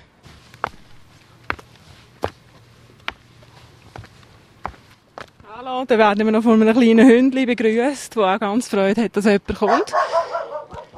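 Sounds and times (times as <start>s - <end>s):
footsteps on a steep sloping path on an island: 0.0s - 5.6s
low hum: 0.0s - 10.9s
speech: 5.6s - 10.1s.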